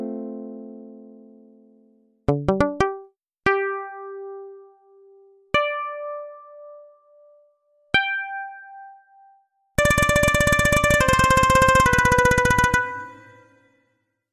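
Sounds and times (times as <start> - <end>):
fizz pluck: 2.3 - 3.7, 9.8 - 13.5.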